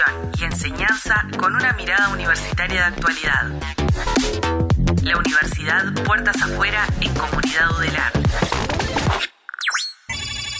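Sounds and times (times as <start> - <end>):
speech: 0.0 - 9.2
electronic telephone ringtone for an incoming call: 9.6 - 10.5.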